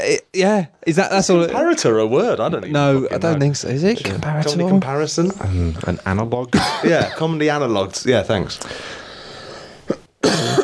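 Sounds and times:
speech: 0:00.0 - 0:09.0
short rough cough: 0:09.9 - 0:10.6.

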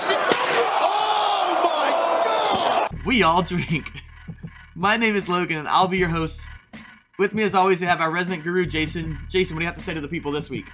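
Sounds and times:
arena crowd roaring and cheering: 0:00.0 - 0:02.9
speech: 0:03.1 - 0:04.0, 0:04.8 - 0:06.5, 0:07.2 - 0:10.7.

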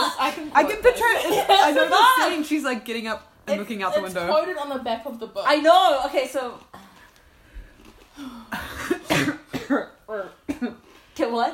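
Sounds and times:
speech: 0:00.4 - 0:06.8, 0:08.2 - 0:11.5
person coughing: 0:08.3 - 0:10.8.

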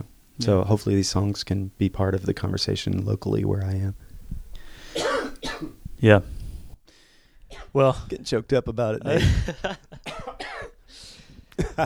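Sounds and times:
speech: 0:00.4 - 0:04.1, 0:06.0 - 0:06.4, 0:07.7 - 0:10.2
person coughing: 0:04.9 - 0:05.9, 0:10.1 - 0:10.8.

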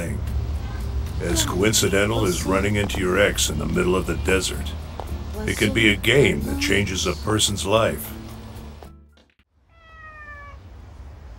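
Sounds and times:
hiss: 0:00.0 - 0:08.9
cat meowing: 0:00.6 - 0:02.7, 0:09.6 - 0:10.7
speech: 0:01.2 - 0:04.8, 0:05.4 - 0:08.2.

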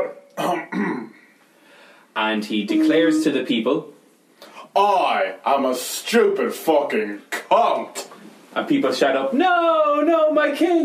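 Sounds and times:
gruff throat-clearing coughs: 0:00.4 - 0:01.2
speech: 0:02.3 - 0:04.0, 0:04.8 - 0:10.8.

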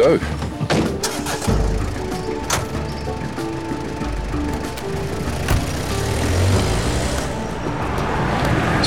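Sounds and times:
speech: 0:00.0 - 0:00.5
low engine and road rumble inside a moving car: 0:01.5 - 0:08.4
knocks and rattles as the vehicle bumps along: 0:04.5 - 0:06.4.

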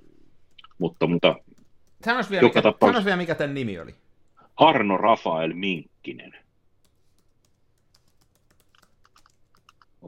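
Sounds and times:
typing on a computer keyboard: 0:00.4 - 0:02.3, 0:06.8 - 0:10.0
speech: 0:00.8 - 0:01.4, 0:02.0 - 0:04.0, 0:04.6 - 0:06.4.

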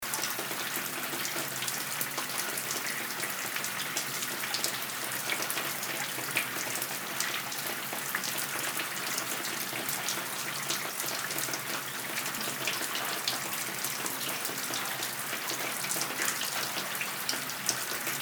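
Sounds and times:
large showerhead running water: 0:00.0 - 0:18.2.

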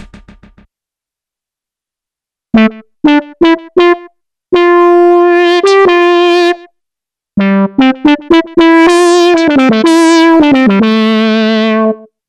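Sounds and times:
solo synth notes: 0:02.5 - 0:06.7, 0:07.4 - 0:12.1.

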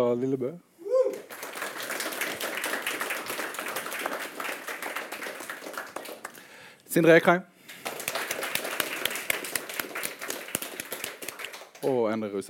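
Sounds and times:
speech: 0:00.0 - 0:00.7, 0:06.9 - 0:07.5, 0:11.8 - 0:12.4
audience applause for a panel of poets and critics: 0:01.2 - 0:06.6, 0:07.7 - 0:11.9.

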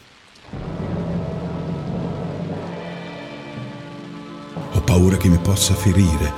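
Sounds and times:
steady rain pouring in a forest: 0:00.0 - 0:06.3
deep rumbling: 0:00.5 - 0:03.5
speech: 0:05.0 - 0:06.3.

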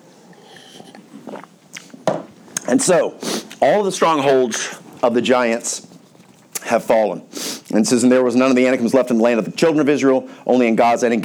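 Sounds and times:
person sipping water: 0:00.1 - 0:03.6, 0:05.8 - 0:06.7
speech: 0:02.7 - 0:05.9, 0:06.7 - 0:11.2.

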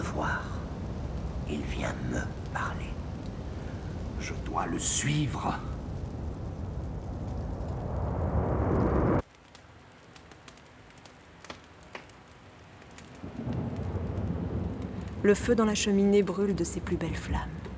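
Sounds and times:
deep thunder rumbling in a thunderstorm outside: 0:00.0 - 0:09.2, 0:13.2 - 0:17.7
heavy rain in a thunderstorm outside: 0:00.0 - 0:17.7
speech: 0:01.5 - 0:03.0, 0:04.2 - 0:05.7, 0:15.2 - 0:17.6.

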